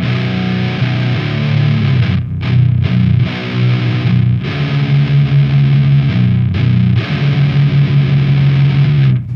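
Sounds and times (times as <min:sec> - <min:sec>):
heavily distorted electric guitar with EQ boost playing chugging riffs and sustained chords: 0:00.0 - 0:09.3.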